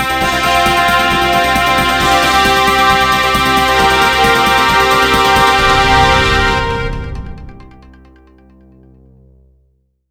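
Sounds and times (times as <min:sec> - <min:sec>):
fanfare news jingle: 0:00.1 - 0:08.1.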